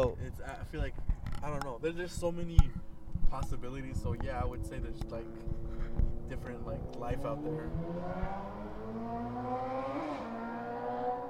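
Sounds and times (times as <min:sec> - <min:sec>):
speech: 0:00.0 - 0:10.1
motorcycle passing by slowly: 0:03.8 - 0:11.2.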